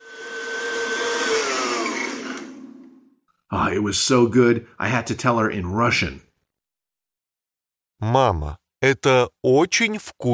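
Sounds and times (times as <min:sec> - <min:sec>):
kitchen blender blending ice cream, blueberries and milk into a milkshake: 0:00.0 - 0:03.1
speech: 0:03.5 - 0:06.3, 0:08.0 - 0:10.3.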